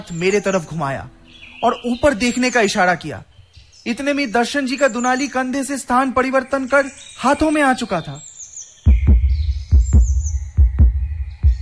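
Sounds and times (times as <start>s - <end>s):
speech: 0.0s - 8.3s
rapid heartbeat thumping in paired low beats: 8.9s - 11.6s.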